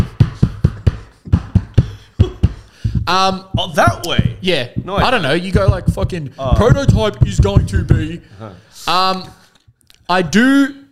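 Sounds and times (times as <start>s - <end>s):
knuckles rapping on a tabletop: 0.0s - 8.1s
speech: 3.1s - 9.4s, 10.1s - 10.8s.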